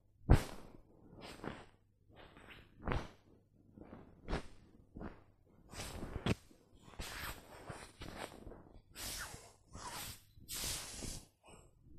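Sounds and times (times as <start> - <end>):
quilt being rubbed: 0.3 - 11.3.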